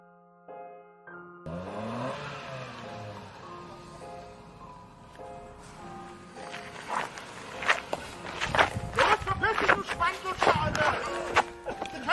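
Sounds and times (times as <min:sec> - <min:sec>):
car engine starting up and revving: 0:01.5 - 0:05.1
sharp knocks and scuffs: 0:06.5 - 0:12.0.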